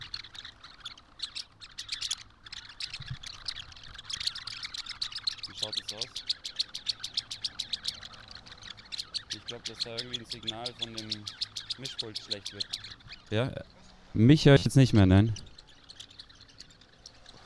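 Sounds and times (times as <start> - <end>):
flock of starlings squawking and chirping while flying over a park: 0.0 - 17.4
speech: 5.6 - 6.4, 9.4 - 15.4.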